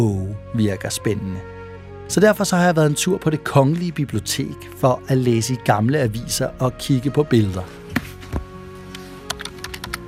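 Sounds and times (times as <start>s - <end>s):
speech: 0.0s - 1.5s, 2.1s - 7.8s
computer mouse clicks while searching a newspaper database: 9.2s - 10.0s.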